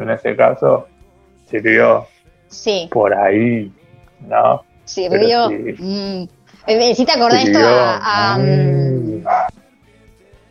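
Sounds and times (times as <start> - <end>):
speech: 0.0 - 0.9, 1.5 - 9.4
dog yowling: 8.3 - 9.5
dog barking: 9.2 - 9.6.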